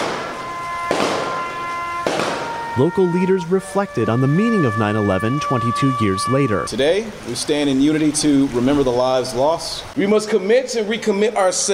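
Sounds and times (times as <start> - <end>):
rifle salute gunfire at a 9/11 memorial ceremony on a rainy morning: 0.0 - 2.6
steady held tone: 0.0 - 6.9
speech: 2.8 - 11.7.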